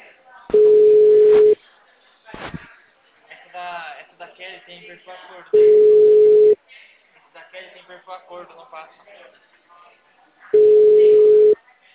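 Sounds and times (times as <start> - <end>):
telephone ringing tone: 0.5 - 1.6, 5.6 - 6.6, 10.6 - 11.6
speech: 4.7 - 6.4, 7.9 - 9.5.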